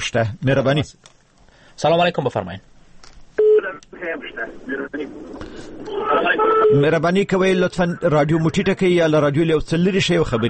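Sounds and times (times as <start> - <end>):
speech: 0.0 - 1.2, 1.8 - 2.7, 4.7 - 10.4
telephone line tone: 3.4 - 3.6
person talking over a phone-like line: 3.4 - 8.2.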